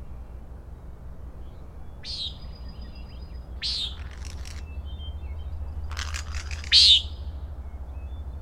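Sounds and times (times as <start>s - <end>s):
low steady background hum: 0.0s - 8.4s
common nighthawks peenting and rattling in Acadia National Park, Maine: 3.7s - 4.7s, 5.8s - 7.0s.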